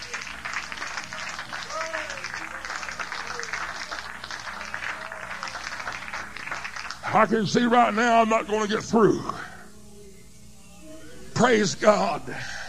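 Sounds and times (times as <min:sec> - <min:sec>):
large audience clapping at a night-time religious service: 0:00.0 - 0:07.2
speech: 0:07.1 - 0:09.4, 0:11.4 - 0:12.6.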